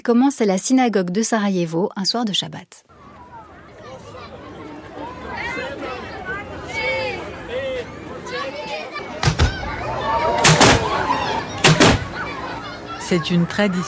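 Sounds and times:
speech: 0.0 - 3.0, 13.1 - 13.8
murmur of a chattering crowd: 2.9 - 13.8
cannon firing in the open air announcing end of Ramadan fast: 10.4 - 10.9, 11.6 - 12.1.

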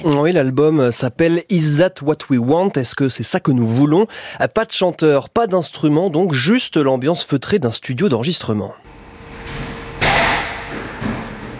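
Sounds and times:
speech: 0.0 - 9.0
door opening in a recording studio: 9.2 - 11.5.

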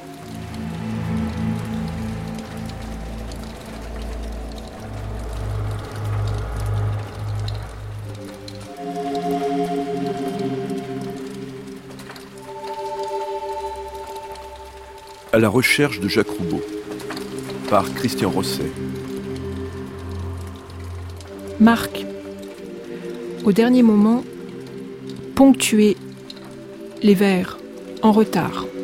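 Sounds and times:
loud sustained musical tones and low droning chords: 0.0 - 28.8
steady rain pattering: 0.0 - 28.8
speech: 15.4 - 16.8, 17.7 - 19.0, 21.6 - 22.0, 23.4 - 24.3, 25.4 - 26.0, 27.0 - 28.7.

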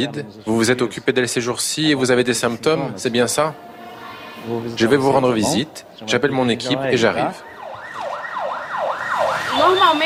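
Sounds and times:
speech: 0.0 - 3.8, 4.4 - 7.5, 9.6 - 10.0
ambulance siren wailing in Palaisopolis favela during the Covid pandemic: 6.8 - 10.0
second overlapping siren tone: 7.5 - 10.0.

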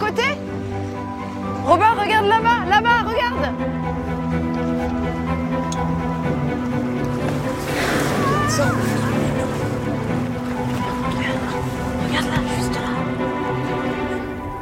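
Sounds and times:
boat engine droning in the Bering Strait: 0.0 - 14.6
rushing water and waves in the Bering Strait: 0.0 - 14.6.

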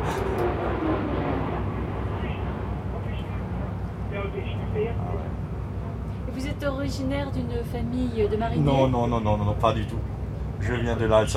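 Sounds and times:
airplane passing overhead: 0.0 - 11.3
speech: 6.4 - 11.3.

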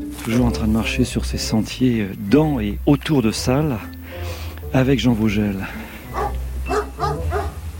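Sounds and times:
speech: 0.3 - 4.0, 4.7 - 5.9
dog barking during a countryside walk along freshly mown hay paths: 6.1 - 7.6.

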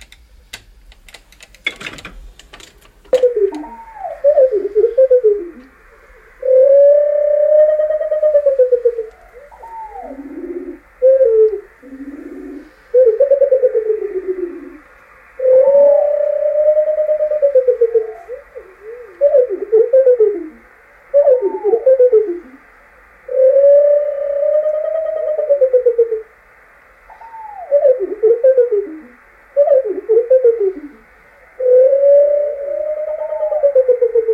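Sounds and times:
sharp clicks: 0.0 - 3.7
bird song from a bird singing in circling flight, played slowed down: 3.1 - 34.3.

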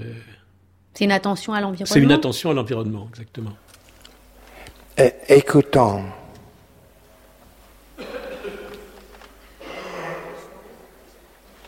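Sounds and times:
speech: 1.0 - 3.7, 5.0 - 6.2
rough breathy coughs: 8.0 - 10.9.

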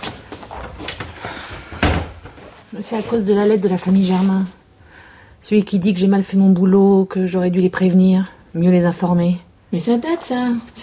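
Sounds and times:
soft clicks and shuffles of door handling: 0.0 - 4.0
door shutting thud: 1.7 - 2.4
speech: 2.7 - 4.6, 5.4 - 10.8.

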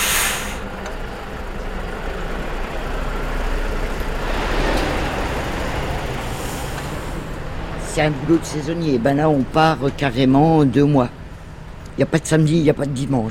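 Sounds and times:
truck air brakes hissing: 0.0 - 0.7, 6.2 - 7.3
heavy trucks arriving at sugar beet factory: 0.0 - 13.3
speech: 8.0 - 11.2, 12.0 - 13.3.

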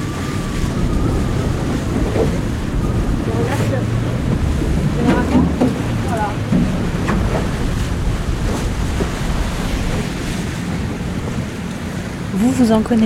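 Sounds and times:
rough churning sea water in a shallow area: 0.0 - 13.0
waves slapping and sloshing against a boat's hull: 0.0 - 13.0
wind buffeting the microphone on a boat: 0.0 - 13.0
speech: 12.6 - 13.0.

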